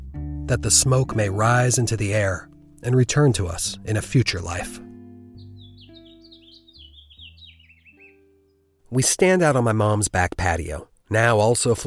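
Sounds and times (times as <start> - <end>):
speech: 0.5 - 4.9, 8.9 - 11.8
birds chirping on a backyard patio: 0.8 - 8.8.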